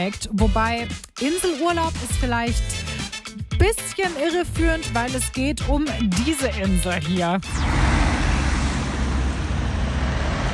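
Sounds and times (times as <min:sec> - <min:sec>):
speech: 0:00.0 - 0:02.9, 0:03.6 - 0:07.8
dense road traffic roar of passing cars at a roundabout: 0:07.6 - 0:10.5.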